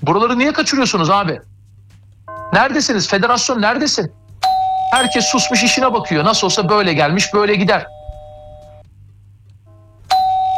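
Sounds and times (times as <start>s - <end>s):
speech: 0.0s - 1.5s, 2.5s - 4.2s, 4.9s - 8.0s
doorbell chime ringing: 4.5s - 8.8s, 10.1s - 10.5s
faint hum: 4.9s - 8.9s.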